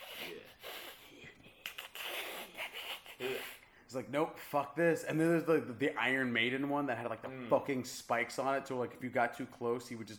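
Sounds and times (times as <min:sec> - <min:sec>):
voice imitating raspy wheezing creature breath: 0:00.0 - 0:01.3, 0:01.9 - 0:03.7
speech: 0:03.2 - 0:10.1.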